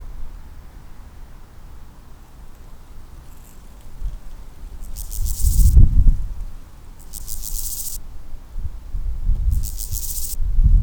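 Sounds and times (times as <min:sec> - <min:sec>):
Chorthippus dorsatus stridulating: 0:02.6 - 0:08.3, 0:09.3 - 0:10.4.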